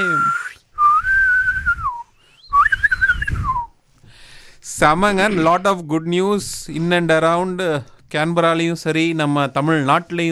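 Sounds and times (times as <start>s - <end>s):
person whistling: 0.0s - 3.8s
speech: 4.8s - 10.3s.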